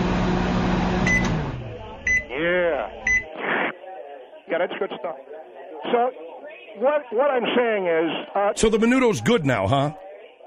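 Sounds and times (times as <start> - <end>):
microwave oven whirring hum while heating food: 0.0 - 2.3
sharp electronic microwave beeps: 2.0 - 2.3, 3.0 - 3.3
speech: 4.5 - 6.2, 6.8 - 10.0.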